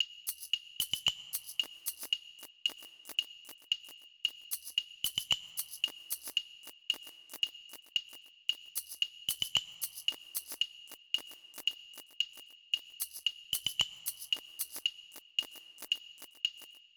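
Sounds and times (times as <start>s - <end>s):
percussion: 0.0s - 16.9s.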